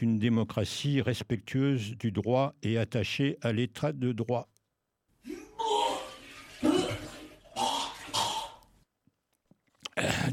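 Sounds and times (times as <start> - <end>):
speech: 0.0 - 4.5
person gulping down water: 6.6 - 8.8, 9.5 - 10.3.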